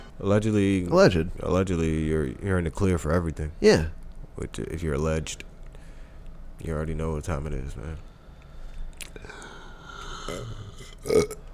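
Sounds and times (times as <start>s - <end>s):
faint noise: 0.0s - 11.5s
speech: 0.2s - 5.5s, 6.6s - 8.1s, 9.2s - 9.4s, 10.3s - 11.4s
deep rumbling burp: 10.1s - 11.5s.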